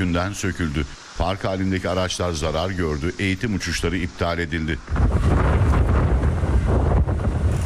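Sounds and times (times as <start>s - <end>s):
speech: 0.0s - 5.5s
powerful storm wind at 80 kilometres per hour in Tekirdağ: 0.0s - 7.6s
storm wind buffeting the microphone: 4.8s - 7.6s.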